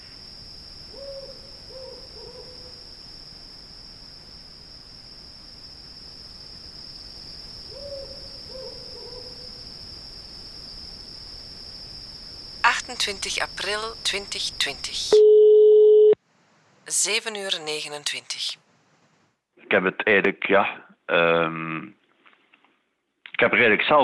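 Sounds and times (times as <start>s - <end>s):
steady high-pitched insect trill at night: 0.0s - 15.1s
owl hooting: 0.9s - 2.8s, 7.7s - 9.6s
speech: 12.9s - 15.2s, 16.9s - 18.6s, 19.7s - 22.0s, 23.4s - 24.0s.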